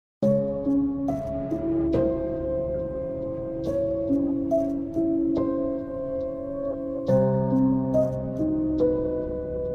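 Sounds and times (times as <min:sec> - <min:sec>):
scary music: 0:00.2 - 0:09.7.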